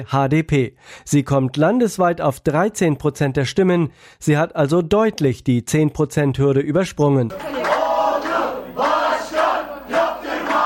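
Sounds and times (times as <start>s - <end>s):
speech: 0.0s - 7.8s
party supporters chanting in chorus: 7.3s - 10.6s.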